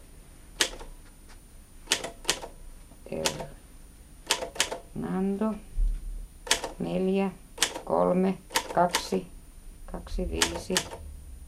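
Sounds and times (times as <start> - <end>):
typewriter keys clacking: 0.6 - 0.9, 1.9 - 2.5, 4.3 - 4.8, 6.5 - 6.8, 7.6 - 7.9, 8.5 - 9.2, 10.4 - 11.0
typewriter mechanical rattle: 1.9 - 2.5, 4.3 - 4.8, 6.5 - 6.8, 7.6 - 7.9, 8.5 - 9.2, 10.2 - 11.0
speech: 3.1 - 3.5, 5.2 - 5.7, 6.8 - 9.3, 9.9 - 11.0.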